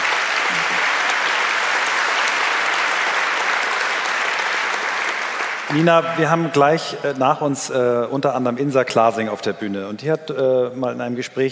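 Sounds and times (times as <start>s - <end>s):
audience applause: 0.0s - 6.6s
speech: 5.7s - 11.5s.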